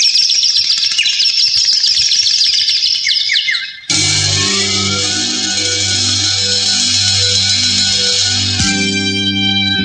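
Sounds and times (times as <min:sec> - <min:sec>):
birds calling at night in a dense chorus: 0:00.0 - 0:09.0
steady humming droning noise: 0:03.9 - 0:09.8.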